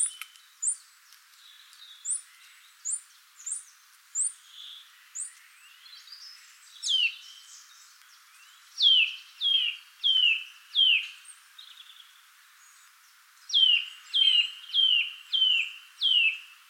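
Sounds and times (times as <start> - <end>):
Eurasian nuthatch Sitta europaea calling: 0.0 - 0.8, 2.0 - 5.4, 8.8 - 11.9, 13.5 - 16.5.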